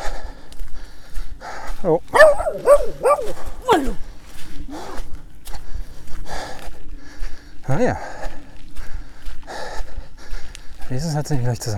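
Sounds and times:
footsteps of a passing pedestrian: 0:00.6 - 0:06.8
speech: 0:01.8 - 0:04.1, 0:07.7 - 0:08.2, 0:10.9 - 0:11.7
two dogs barking and yelping, one small: 0:02.1 - 0:04.1.

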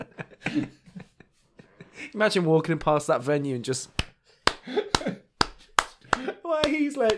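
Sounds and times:
speech: 0:00.6 - 0:00.8, 0:02.1 - 0:04.0, 0:06.6 - 0:07.1
person imitating bodies slapping on a floor: 0:04.0 - 0:07.1.

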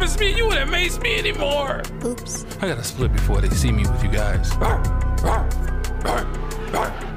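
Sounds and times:
speech: 0:00.2 - 0:05.4
dog barking: 0:04.6 - 0:07.0.

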